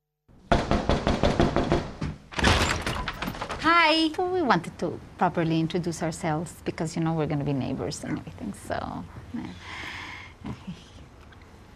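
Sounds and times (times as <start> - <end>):
knocking on a door: 0.5 - 2.3
speech: 3.8 - 10.7.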